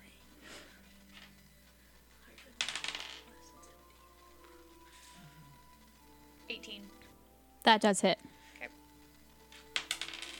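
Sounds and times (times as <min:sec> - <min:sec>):
dice clattering onto a hard table during a tabletop game: 0:02.4 - 0:03.3, 0:09.5 - 0:10.3
speech: 0:06.6 - 0:07.0, 0:07.7 - 0:08.3.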